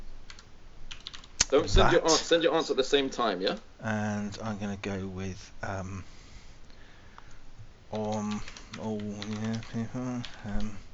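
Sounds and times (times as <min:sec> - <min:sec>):
people typing on computer keyboards: 0:00.3 - 0:01.5, 0:07.9 - 0:10.8
speech: 0:01.5 - 0:06.2, 0:07.9 - 0:10.8.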